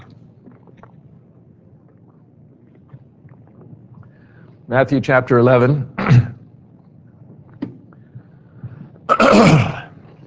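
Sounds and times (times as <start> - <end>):
speech: 4.7 - 6.3
throat clearing from a tickle in the throat: 6.0 - 6.4, 9.1 - 9.9.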